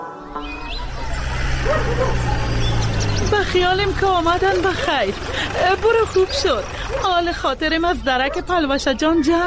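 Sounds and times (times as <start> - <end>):
steady rumble of passing traffic: 0.3 - 9.4
dog barking and yipping: 0.8 - 3.2, 6.1 - 7.3, 8.2 - 8.6
speech: 3.5 - 9.4.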